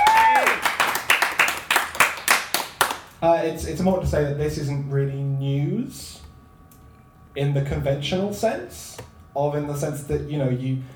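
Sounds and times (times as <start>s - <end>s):
audience applause: 0.0s - 3.1s
speech: 3.2s - 6.3s, 7.4s - 10.9s.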